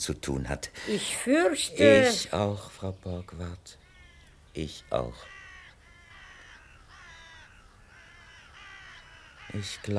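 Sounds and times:
speech: 0.0 - 3.8, 4.6 - 5.4, 9.5 - 9.9
ravens cawing: 3.8 - 9.9.

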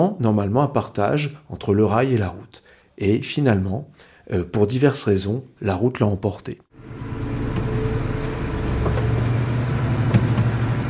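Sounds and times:
speech: 0.0 - 7.1
large freight truck engine rumble on the road: 6.8 - 10.8.

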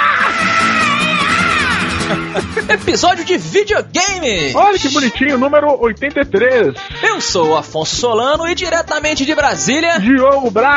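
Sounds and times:
people yelling and screaming: 0.0 - 2.6
laughter: 0.8 - 3.2
speech: 2.7 - 10.7.

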